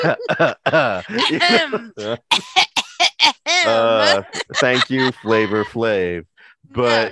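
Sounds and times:
laughter: 0.0s - 6.2s, 6.8s - 7.1s
speech: 0.0s - 7.1s
person clearing throat: 1.0s - 3.0s.

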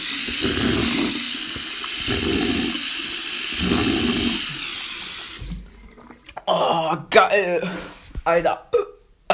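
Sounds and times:
tap water running steadily: 0.0s - 6.5s
speech: 6.5s - 8.7s.

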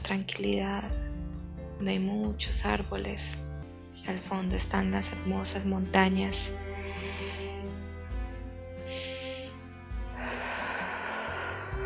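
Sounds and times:
soft steady music: 0.0s - 11.8s
speech: 0.1s - 1.1s, 1.8s - 7.8s
slow deep breath in and out: 6.6s - 8.0s, 8.8s - 11.8s.

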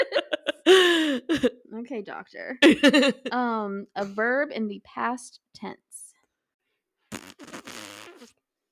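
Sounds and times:
laughter: 0.0s - 1.4s, 2.6s - 3.3s
faint breathy sound: 0.6s - 1.4s
speech: 1.3s - 6.0s
raspberry blown with the lips imitating a fart: 7.1s - 8.4s.

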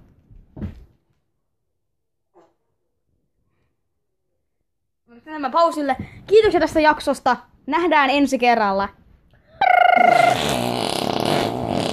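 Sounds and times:
speech: 5.1s - 9.0s
loud squeaky sputtering fart: 9.6s - 11.9s.

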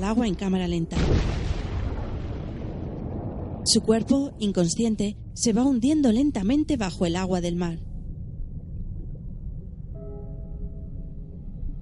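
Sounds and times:
speech: 0.0s - 1.6s, 3.7s - 7.9s
large explosion in a seaside blaze: 0.9s - 4.5s.

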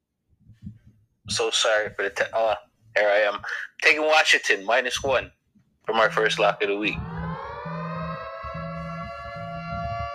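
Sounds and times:
speech: 1.3s - 7.1s
siren wailing: 6.0s - 10.1s
low honking tone: 6.1s - 10.1s.

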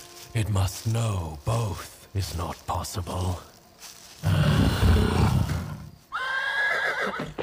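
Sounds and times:
speech: 0.3s - 4.4s
frightened horse neighing in alarm: 4.2s - 7.4s.

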